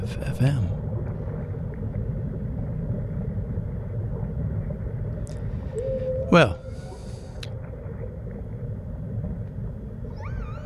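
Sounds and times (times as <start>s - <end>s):
speech: 0.1s - 0.8s, 6.3s - 6.6s
ocean-themed ambient music with a constant low rumbling bed: 0.7s - 10.6s
whale calls in ocean-themed ambient music: 5.5s - 8.5s, 10.0s - 10.6s.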